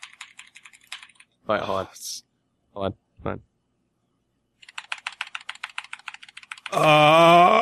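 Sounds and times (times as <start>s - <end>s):
typing on mechanical keyboard with blue switches: 0.0s - 1.3s, 4.6s - 6.8s
speech: 1.5s - 3.5s, 6.7s - 7.6s.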